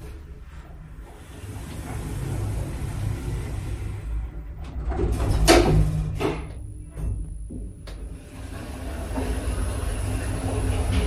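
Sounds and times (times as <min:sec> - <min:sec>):
low mechanical rumble: 0:00.0 - 0:11.0
steady high whine and continuous hum of the elevator car: 0:00.0 - 0:11.0
elevator door sliding shut with sharp clunks: 0:01.2 - 0:06.7, 0:08.1 - 0:11.0.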